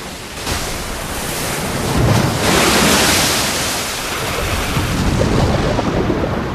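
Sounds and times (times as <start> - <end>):
churning surf crashing against jagged coastal rocks as a hurricane approaches: 0.0 - 6.5
gusty wind buffeting the microphone: 0.0 - 6.5.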